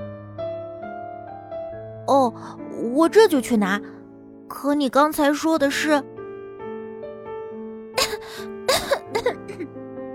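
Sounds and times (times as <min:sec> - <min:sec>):
soft steady musical background: 0:00.0 - 0:10.1
speech: 0:02.1 - 0:06.1
throaty coughs made for a flower in a narrated story: 0:08.0 - 0:09.7.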